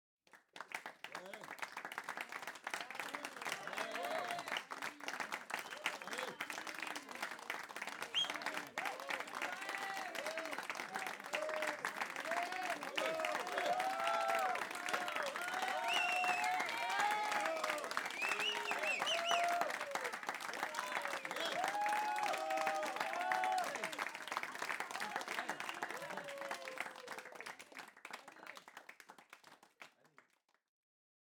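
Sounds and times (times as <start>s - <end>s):
audience applauding: 0.3s - 30.3s
whistling: 5.4s - 6.8s, 8.1s - 8.6s, 15.7s - 16.8s, 18.0s - 19.6s, 20.9s - 21.8s
people shouting bravo: 9.4s - 20.1s, 20.7s - 23.9s.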